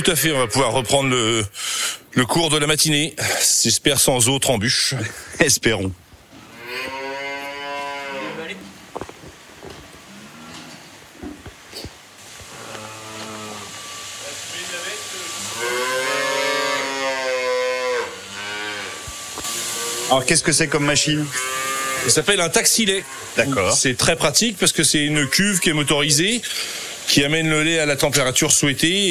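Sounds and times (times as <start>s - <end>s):
calf mooing on a dairy farm: 0.0s - 1.4s, 6.4s - 8.7s, 10.1s - 10.9s, 12.5s - 13.8s, 15.3s - 23.8s, 24.8s - 26.2s
speech: 0.0s - 6.1s, 20.1s - 29.0s
laughter: 4.8s - 5.6s.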